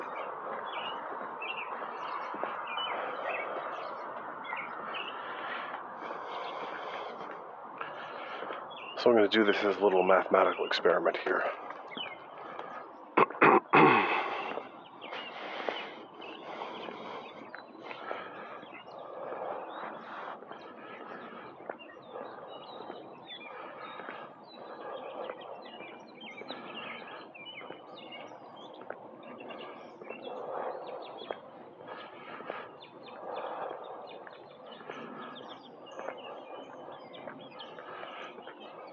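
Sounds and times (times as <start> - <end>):
birds chirping outdoors: 0.0 - 38.9
speech: 9.0 - 11.6.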